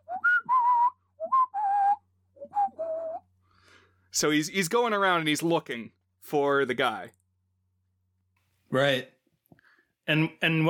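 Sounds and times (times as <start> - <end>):
person whistling a short signal tune: 0.0 - 3.3
speech: 4.1 - 7.2, 8.7 - 9.2, 10.1 - 10.6.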